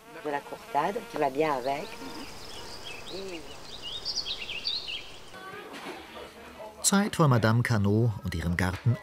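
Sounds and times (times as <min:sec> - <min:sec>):
bees buzzing: 0:00.0 - 0:06.6
speech: 0:00.2 - 0:02.4, 0:03.1 - 0:03.6, 0:06.8 - 0:09.0
faint bird chirps: 0:01.6 - 0:05.5.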